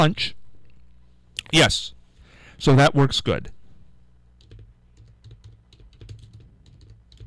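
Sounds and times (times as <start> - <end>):
speech: 0.0 - 0.4, 1.5 - 2.0, 2.6 - 3.6
low hum: 0.0 - 7.2
typing on a computer keyboard: 4.4 - 7.2.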